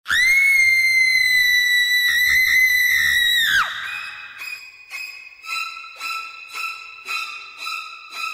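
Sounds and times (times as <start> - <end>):
shrieking horror film string music: 0.1 - 8.3.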